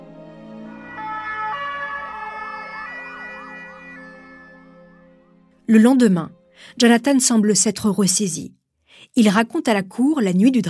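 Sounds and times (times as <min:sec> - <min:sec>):
ambulance siren wailing: 0:00.4 - 0:05.5
speech: 0:05.7 - 0:10.6.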